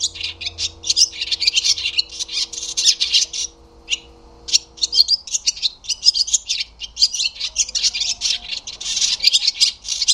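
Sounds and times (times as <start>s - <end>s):
barn swallow chattering twitter: 0.0s - 10.1s.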